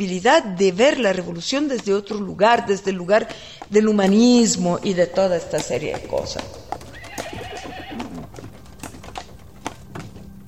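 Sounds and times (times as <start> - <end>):
speech: 0.0 - 6.7
horse hooves clopping: 0.0 - 10.4
horse whinnying: 6.6 - 8.6.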